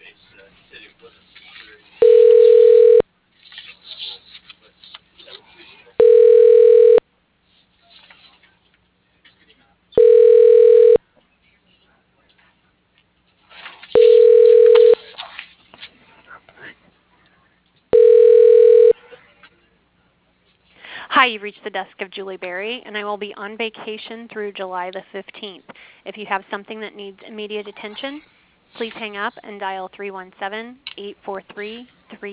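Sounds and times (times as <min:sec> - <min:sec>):
telephone ringback tone while connecting to an office extension: 0:02.0 - 0:03.0, 0:06.0 - 0:07.0, 0:10.0 - 0:11.0, 0:14.0 - 0:15.0, 0:17.9 - 0:19.0
speech: 0:21.3 - 0:32.3.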